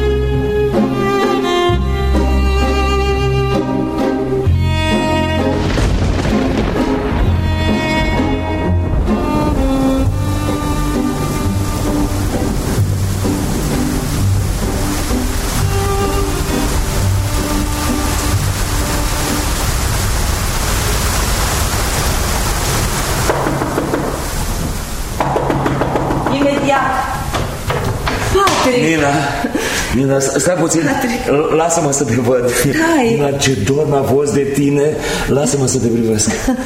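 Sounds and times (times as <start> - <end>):
sustained musical score: 0.0 - 21.1
steady loud rain: 0.0 - 36.6
speech: 30.1 - 36.6.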